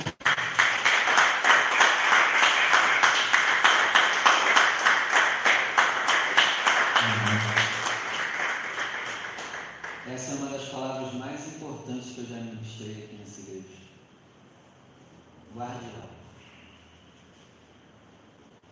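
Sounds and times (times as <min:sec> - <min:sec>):
crowd applauding: 0:00.0 - 0:10.4.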